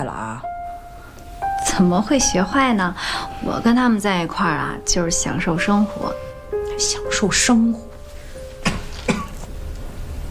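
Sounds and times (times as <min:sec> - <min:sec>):
speech: 0:00.0 - 0:00.5, 0:01.7 - 0:06.2, 0:06.8 - 0:07.9
steady hiss: 0:00.0 - 0:10.2
person coughing: 0:08.6 - 0:09.5.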